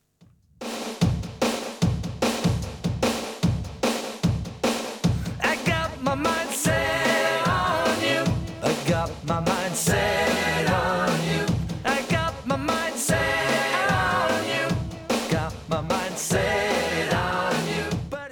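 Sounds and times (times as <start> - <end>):
punchy steady drum beat: 0.6 - 18.3
pop song: 5.2 - 18.3.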